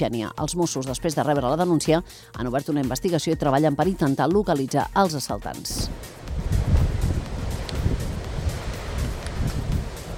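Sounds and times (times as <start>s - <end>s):
speech: 0.0s - 6.1s
strong tramontane wind gusts buffeting the microphone: 5.8s - 10.1s.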